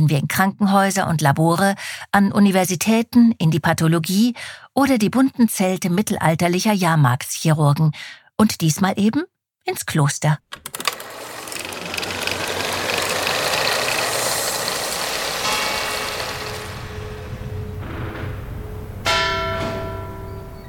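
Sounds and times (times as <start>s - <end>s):
speech: 0.0s - 10.9s
small death knell bell rope mechanism creaking and clattering: 10.6s - 18.0s
small death knell bell rung by rope: 14.9s - 17.8s.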